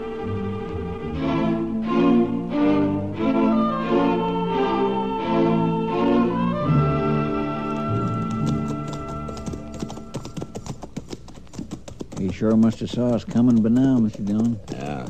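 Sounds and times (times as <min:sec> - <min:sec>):
sustained orchestral music: 0:00.0 - 0:10.1
horse hooves clip-clopping: 0:07.1 - 0:15.0
speech: 0:12.4 - 0:14.7.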